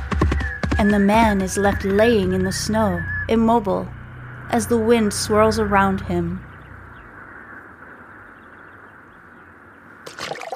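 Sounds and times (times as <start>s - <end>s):
speech: 0.8s - 6.5s
outdoor ambience at a pond with cattails on a warm summer day: 4.0s - 10.5s
large frog hopping into pond water: 10.0s - 10.5s.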